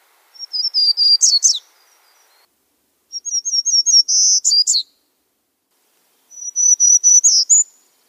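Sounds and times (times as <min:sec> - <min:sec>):
warbler singing high nasal whistles in Olympic conifer forest canopy: 0:00.4 - 0:02.5, 0:03.1 - 0:05.1, 0:06.2 - 0:07.9.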